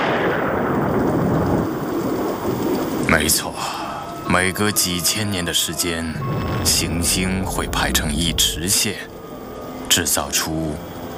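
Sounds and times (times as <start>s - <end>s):
thunder rumbling in a storm: 0.0s - 3.1s, 6.1s - 9.3s
rushing rain-like hiss: 0.0s - 11.1s
speech: 3.2s - 3.7s, 4.4s - 9.1s, 10.0s - 10.9s.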